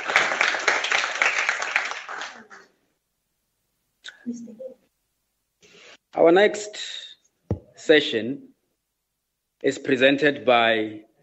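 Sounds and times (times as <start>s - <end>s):
audience applauding: 0.0s - 2.7s
speech: 6.2s - 7.0s, 7.9s - 8.5s, 9.6s - 11.1s.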